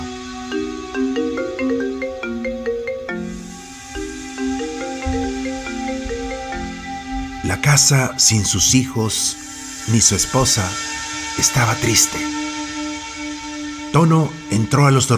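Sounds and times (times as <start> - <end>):
melodic phone ringtone ringing unanswered: 0.4 - 8.4
speech: 7.7 - 12.4, 14.0 - 15.1.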